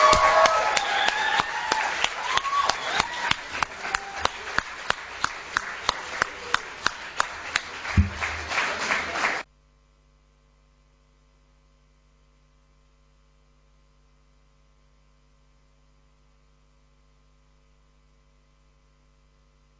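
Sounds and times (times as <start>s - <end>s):
crowd applauding a team receiving a cup: 0.0s - 9.5s.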